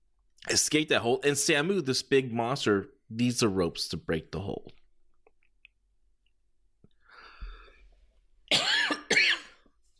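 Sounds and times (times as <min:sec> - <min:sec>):
speech: 0:00.5 - 0:04.8
wrestling commentator coughing: 0:08.5 - 0:09.8.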